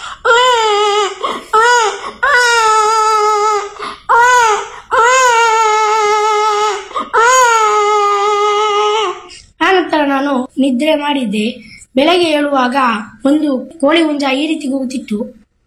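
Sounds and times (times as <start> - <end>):
young child crying at night: 0.1 - 9.3
speech: 10.6 - 15.4.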